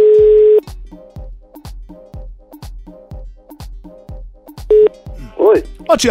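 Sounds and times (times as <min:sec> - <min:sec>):
telephone line tone: 0:00.0 - 0:00.6, 0:04.7 - 0:04.9
telephone dialing beeps: 0:04.7 - 0:04.9
speech: 0:05.9 - 0:06.1.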